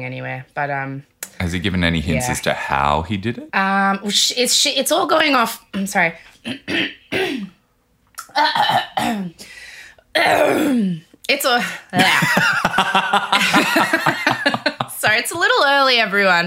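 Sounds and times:
speech: 0.0s - 7.6s, 8.3s - 14.4s, 15.1s - 16.4s
person clearing throat: 6.4s - 7.6s, 8.3s - 9.4s, 10.2s - 11.0s, 12.0s - 12.4s
person coughing in rough raspy bursts: 6.4s - 7.6s, 8.4s - 9.4s, 10.2s - 11.0s, 12.0s - 12.8s
laughter: 12.0s - 15.4s.

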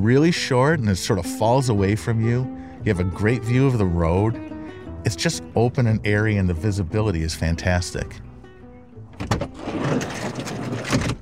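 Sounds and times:
speech: 0.0s - 8.3s, 9.2s - 9.6s
van sliding door rolling open along its track: 9.1s - 11.2s.

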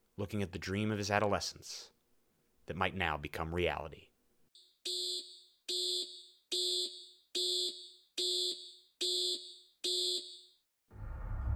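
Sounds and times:
speech: 0.2s - 2.0s, 2.7s - 4.1s
lunar module computer alarm tone: 4.6s - 10.6s.

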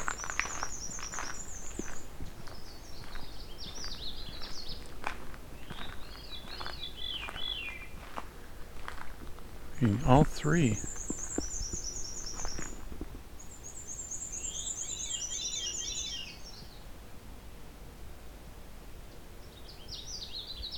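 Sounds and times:
Canada warbler singing: 0.0s - 4.9s, 5.6s - 8.1s, 9.8s - 16.8s, 19.4s - 20.7s
rustle of forest noise in a swampy forest: 0.0s - 20.7s
speech: 9.8s - 10.9s.

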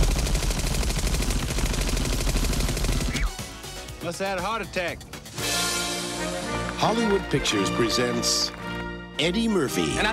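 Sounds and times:
Uzi submachine gun firing a continuous rapid burst: 0.0s - 3.4s
speech: 4.1s - 5.5s, 6.2s - 8.6s, 9.2s - 10.1s.

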